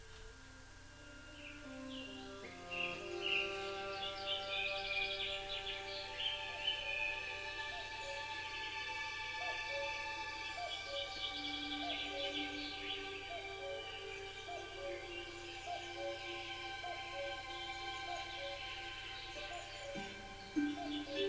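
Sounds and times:
cuckoo calling: 0.0s - 21.2s
robin singing: 0.0s - 21.2s
soft sustained musical tones: 0.0s - 21.2s.

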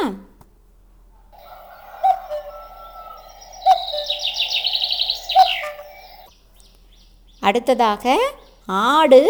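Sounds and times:
speech: 0.0s - 0.3s, 7.4s - 9.2s
steady hum: 0.0s - 9.2s
cuckoo calling: 1.2s - 6.3s.

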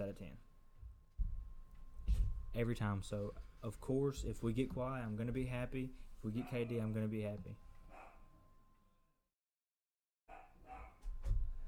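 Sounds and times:
speech: 0.0s - 0.5s, 2.1s - 7.6s
noise: 0.0s - 9.3s, 10.3s - 11.6s
dog barking: 6.4s - 6.8s, 7.9s - 8.3s, 10.3s - 11.0s.

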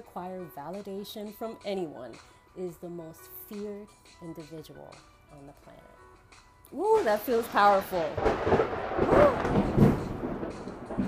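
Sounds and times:
speech: 0.2s - 6.0s, 6.7s - 9.8s
thunder rumbling: 7.0s - 11.0s.

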